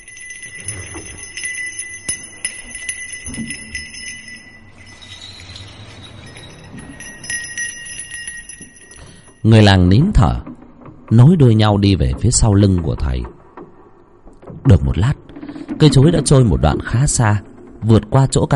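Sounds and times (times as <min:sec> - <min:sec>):
bells ringing by a ritual master on a riverbank: 0:00.0 - 0:10.2
speech: 0:03.4 - 0:03.7, 0:09.5 - 0:10.5, 0:11.1 - 0:13.4, 0:14.6 - 0:15.2, 0:15.8 - 0:18.5.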